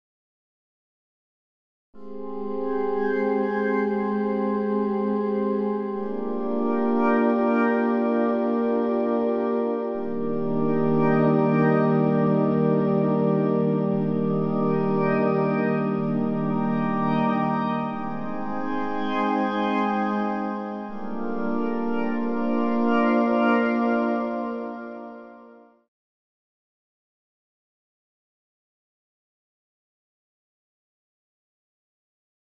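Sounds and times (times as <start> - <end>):
Korg SDD-3000 synth pad without effect: 2.0 - 25.5.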